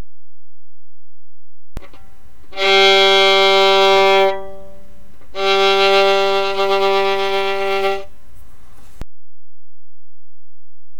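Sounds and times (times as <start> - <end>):
half vibrato tone: 1.8 - 9.0.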